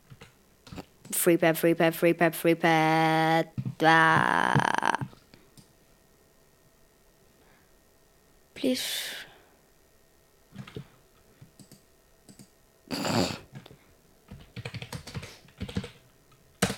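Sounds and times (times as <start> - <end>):
speech: 1.2 - 5.0
computer keyboard typing: 11.5 - 12.5, 14.3 - 16.0, 16.6 - 16.7.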